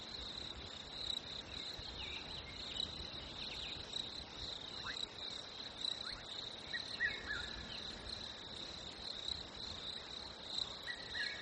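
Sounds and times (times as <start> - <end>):
crickets chirping: 0.0 - 11.3.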